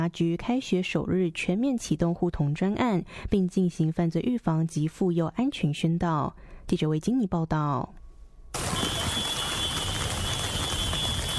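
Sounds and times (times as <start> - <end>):
speech: 0.0 - 9.0
steady dense rainfall: 8.6 - 11.3.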